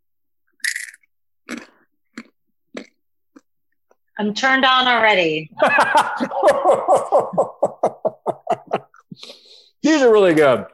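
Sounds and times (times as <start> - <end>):
chewing crunchy salted large Peruvian corn kernels: 0.6 - 3.5
speech: 4.2 - 7.6, 9.2 - 10.7
laughter: 5.6 - 9.2.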